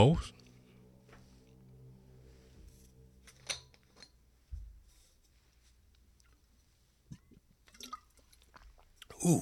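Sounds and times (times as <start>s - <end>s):
speech: 0.0s - 0.4s
faint low hum: 0.0s - 9.4s
person sipping water: 7.1s - 9.4s
swallowing: 7.1s - 9.4s.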